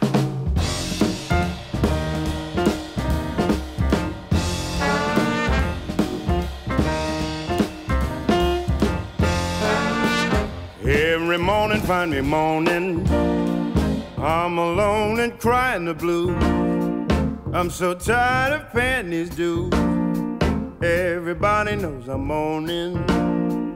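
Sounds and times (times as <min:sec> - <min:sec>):
full jazz band of piano, bass and horns playing: 0:00.0 - 0:23.7
deep male voice singing a slow bluesy jazz song: 0:09.6 - 0:16.8, 0:17.5 - 0:20.0, 0:20.7 - 0:23.7
speech: 0:11.4 - 0:13.4, 0:14.2 - 0:16.6, 0:17.5 - 0:20.0, 0:20.8 - 0:23.3.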